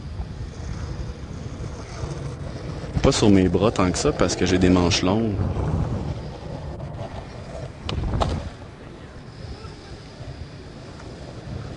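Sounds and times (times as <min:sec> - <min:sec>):
wind buffeting the microphone outdoors: 0:00.0 - 0:11.7
speech: 0:03.0 - 0:05.9.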